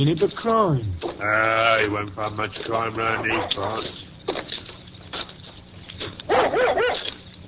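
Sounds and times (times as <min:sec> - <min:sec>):
speech: 0:00.0 - 0:04.1
dog giving excited yelping barks: 0:03.1 - 0:03.8, 0:06.3 - 0:07.2.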